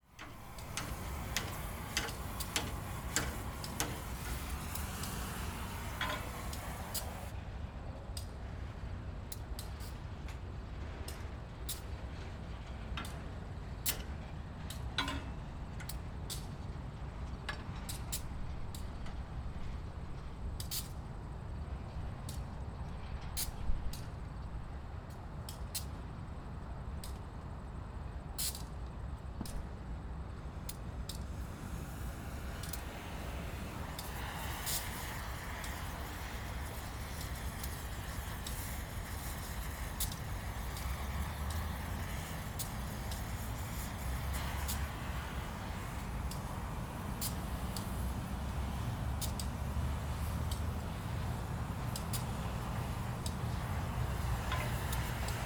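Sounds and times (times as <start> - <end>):
worker welding: 0.0 - 7.3, 30.5 - 55.4
train yard ambience near road: 0.0 - 55.4.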